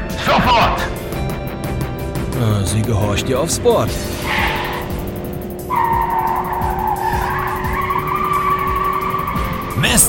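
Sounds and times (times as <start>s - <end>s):
cars racing at high speed in a chase with engines roaring: 0.0s - 10.0s
speech: 0.3s - 1.0s, 2.4s - 4.6s, 9.8s - 10.0s
tires screeching in long skids: 2.6s - 10.0s.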